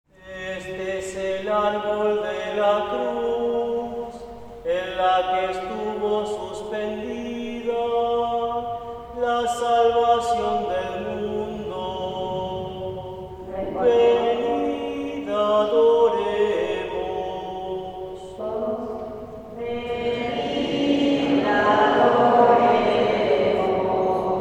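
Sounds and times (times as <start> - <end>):
Good Friday mass at San Pablo parish in Villa Constitucion: 0.1 - 24.3.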